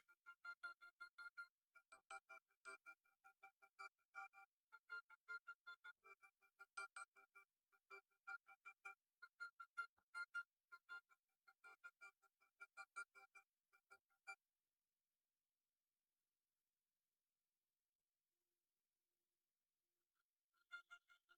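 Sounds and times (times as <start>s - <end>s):
keyboard: 0.0s - 14.4s.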